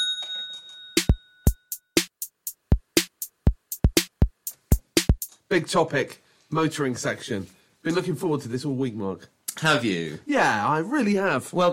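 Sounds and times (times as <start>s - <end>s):
bell ringing: 0.0s - 2.0s
sharp percussive hits: 1.0s - 5.3s
speech: 5.5s - 11.7s.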